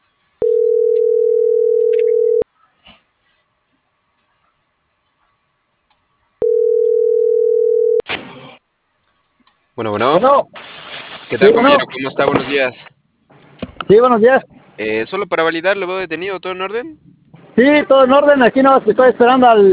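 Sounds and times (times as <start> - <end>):
telephone dial tone beeps while dialing: 0.4 - 2.4, 6.4 - 8.0
speech: 9.8 - 10.7, 11.3 - 12.9, 13.9 - 19.7.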